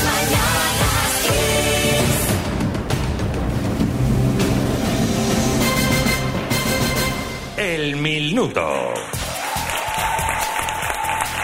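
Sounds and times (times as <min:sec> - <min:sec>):
rhythmic low thumps: 0:00.0 - 0:08.4
live audience applauding and cheering: 0:08.7 - 0:11.4.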